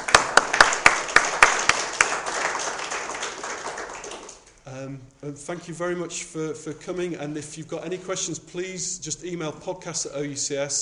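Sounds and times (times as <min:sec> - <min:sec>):
small audience applause: 0:00.0 - 0:04.4
speech: 0:04.9 - 0:10.8.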